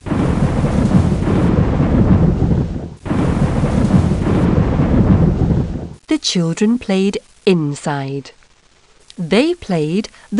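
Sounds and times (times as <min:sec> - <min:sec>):
loud continuous rolling thunder: 0:00.0 - 0:06.0
steady roar of rain: 0:00.0 - 0:10.3
speech: 0:06.1 - 0:08.4, 0:09.2 - 0:10.3.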